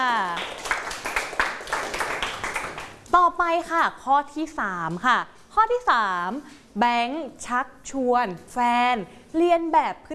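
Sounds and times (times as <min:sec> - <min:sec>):
small group clapping in a classroom: 0:00.0 - 0:03.2
speech: 0:03.1 - 0:10.1.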